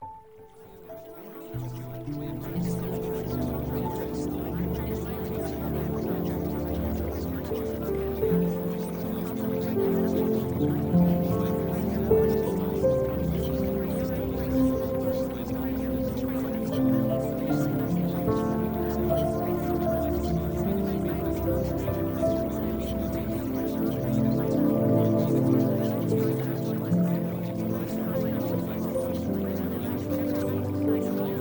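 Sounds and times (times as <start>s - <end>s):
relaxation music: 0.0s - 31.4s.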